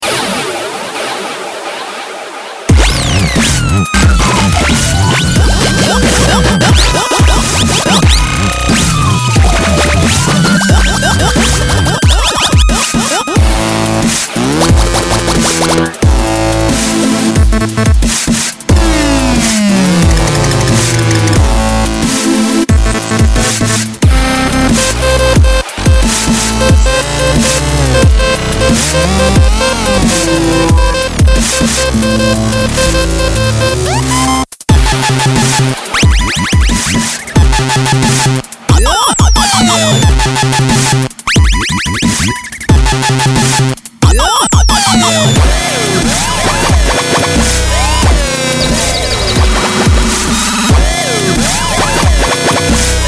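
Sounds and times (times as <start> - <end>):
smashing dubstep music: 2.7 - 53.0.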